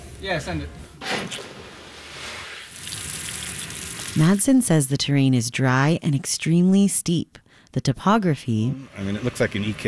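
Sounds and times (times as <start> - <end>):
speech: 0.2 - 1.6, 4.2 - 9.8
water rushing through a hose from a hydrant into a fire truck: 1.8 - 4.4.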